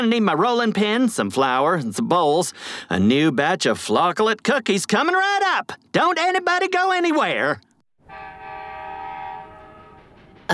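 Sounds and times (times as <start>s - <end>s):
speech: 0.0s - 7.7s
train horn blaring: 8.0s - 10.5s.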